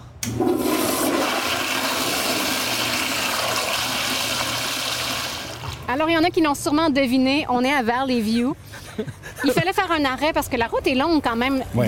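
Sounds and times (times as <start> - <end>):
speech: 0.2 - 0.7, 5.9 - 11.8
toilet flushing at a gas station rest stop in Valley View, Alberta: 0.2 - 5.9.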